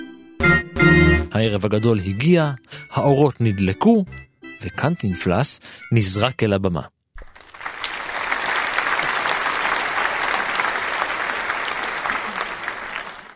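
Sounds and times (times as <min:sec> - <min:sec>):
speech: 0:01.3 - 0:07.0
large audience applauding at an evening stage show: 0:07.2 - 0:13.3.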